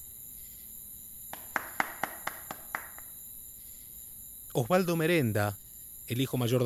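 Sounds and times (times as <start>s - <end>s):
hands clapping to call at the door of a farm: 1.3s - 3.1s
speech: 4.6s - 6.6s.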